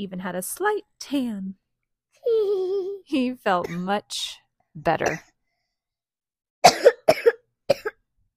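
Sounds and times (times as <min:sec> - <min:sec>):
speech: 0:00.0 - 0:01.6, 0:02.2 - 0:05.3
person coughing: 0:03.6 - 0:03.9, 0:05.0 - 0:05.3, 0:06.6 - 0:08.0.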